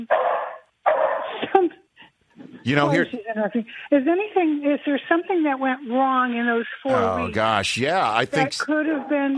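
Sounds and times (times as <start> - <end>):
dog barking: 0.1 - 1.4
speech: 2.7 - 9.3.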